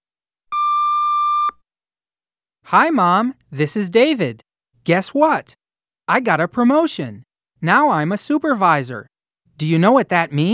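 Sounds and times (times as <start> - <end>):
answering machine beep: 0.5 - 1.6
speech: 2.7 - 10.5.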